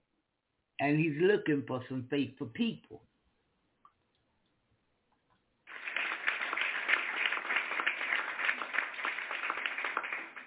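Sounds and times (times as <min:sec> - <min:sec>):
speech: 0:00.8 - 0:03.1
hands clapping: 0:05.7 - 0:10.4.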